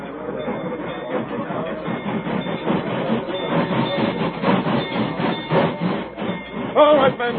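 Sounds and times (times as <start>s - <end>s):
train rumbling across a bridge: 0.0s - 7.3s
speech: 6.8s - 7.3s.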